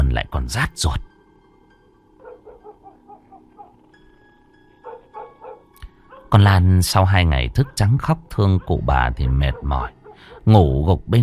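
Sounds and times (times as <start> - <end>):
speech: 0.2 - 1.1, 6.3 - 11.2
dogs barking at night: 2.2 - 6.5, 7.1 - 10.6.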